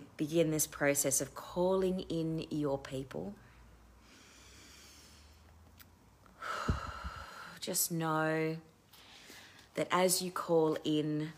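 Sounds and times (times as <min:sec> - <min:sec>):
speech: 0:00.2 - 0:03.4, 0:07.7 - 0:08.7, 0:09.8 - 0:11.3
deep breath during a guided breathing exercise: 0:03.6 - 0:05.5, 0:06.4 - 0:07.6.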